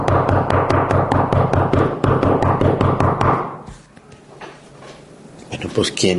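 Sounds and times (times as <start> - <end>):
loud forceful knocking on a door: 0.0 - 3.5
speech: 5.8 - 6.1.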